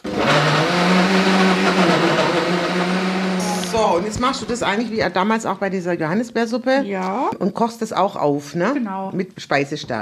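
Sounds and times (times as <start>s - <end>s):
blender pureeing peaches: 0.0s - 5.2s
speech: 4.0s - 10.0s.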